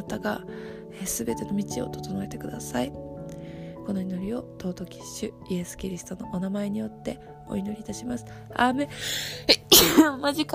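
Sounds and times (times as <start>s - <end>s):
speech: 0.1s - 3.1s, 3.9s - 10.5s
person sneezing: 9.6s - 10.0s.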